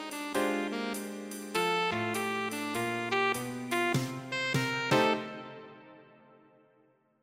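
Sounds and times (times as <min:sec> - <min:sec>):
playalong bass: 0:00.2 - 0:05.2.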